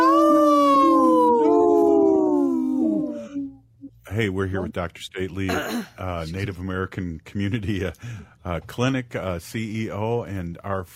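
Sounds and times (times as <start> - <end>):
wolf howling: 0.0 - 3.5
speech: 4.2 - 10.9.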